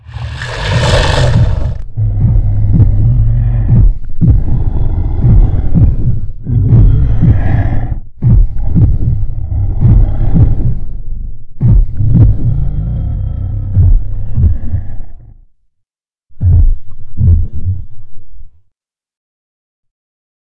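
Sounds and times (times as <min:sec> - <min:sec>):
heartbeat: 0:00.8 - 0:13.0, 0:13.7 - 0:15.2, 0:16.3 - 0:18.2.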